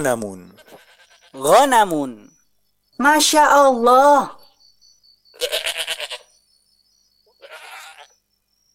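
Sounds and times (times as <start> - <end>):
speech: 0.0 - 0.6, 1.3 - 2.3, 3.0 - 4.4, 5.4 - 5.7
faint steady tone: 0.4 - 8.7
goat bleating: 0.5 - 1.5, 5.4 - 6.3, 7.4 - 8.2.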